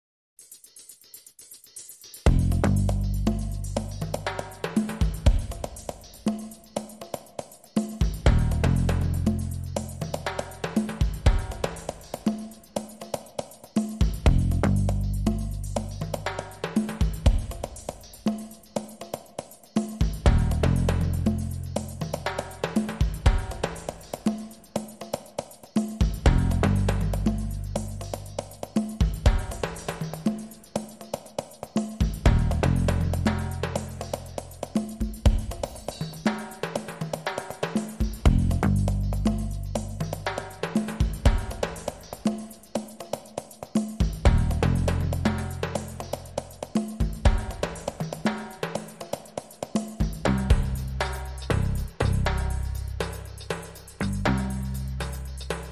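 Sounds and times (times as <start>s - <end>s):
drums: 0.4s - 55.7s
percussion: 0.4s - 55.7s
bass: 2.2s - 5.6s, 8.0s - 12.2s, 14.0s - 17.8s, 20.0s - 24.2s, 26.0s - 30.3s, 32.0s - 36.3s, 38.0s - 41.9s, 44.0s - 48.2s, 50.0s - 55.7s.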